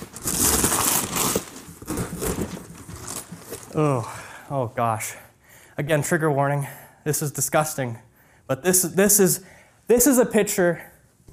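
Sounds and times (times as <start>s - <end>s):
cardboard box and packing tape torn open by hand: 0.0s - 3.8s
rustling: 0.0s - 4.0s
speech: 3.8s - 5.2s, 5.8s - 11.3s.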